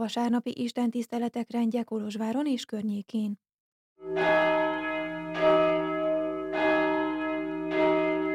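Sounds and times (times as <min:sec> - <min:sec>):
speech: 0:00.0 - 0:03.4, 0:04.0 - 0:04.8
church bell tolling: 0:04.0 - 0:08.3.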